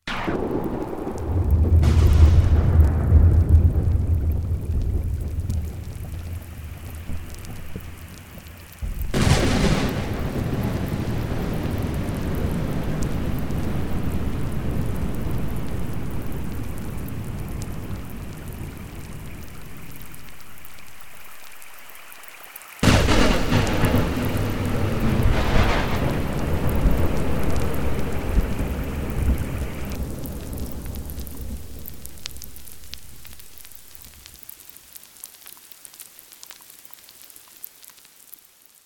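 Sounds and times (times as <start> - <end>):
thunder: 0.0 - 21.4, 22.8 - 34.3.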